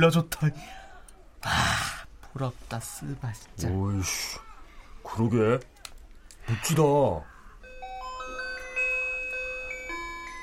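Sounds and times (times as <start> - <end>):
speech: 0.0 - 0.8, 2.4 - 4.5, 5.1 - 5.7, 6.5 - 7.3
electronic school bell chiming a short melody: 7.6 - 10.4.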